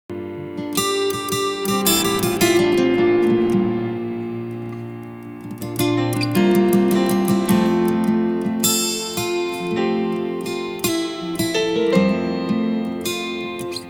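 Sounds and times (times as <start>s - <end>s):
powerful acoustic guitar strumming: 0.1s - 13.8s.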